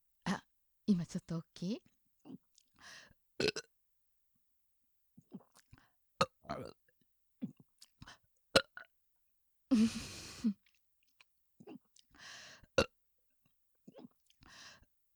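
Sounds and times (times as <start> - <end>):
speech: 0.9 - 1.9, 2.8 - 3.7, 6.5 - 6.8, 9.8 - 10.6
short rough burp after swallowing air: 3.4 - 3.7, 6.2 - 6.8
gulping and swallowing with clicky throat sounds: 5.2 - 6.8, 7.4 - 8.0.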